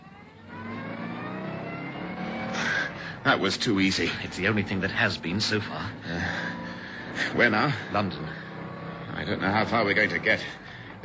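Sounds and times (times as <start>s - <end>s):
sports car engine revving and accelerating: 0.0s - 11.0s
speech: 3.2s - 6.5s, 7.2s - 8.4s, 9.2s - 11.0s.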